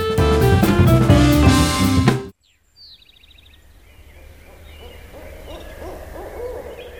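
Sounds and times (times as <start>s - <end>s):
loud music: 0.0s - 2.3s.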